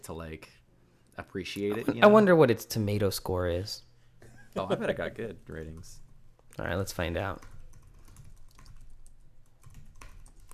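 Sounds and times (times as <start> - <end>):
speech: 0.0 - 0.6, 1.2 - 3.9, 4.5 - 6.0, 6.6 - 7.5
typing a search on a computer keyboard: 7.2 - 10.5.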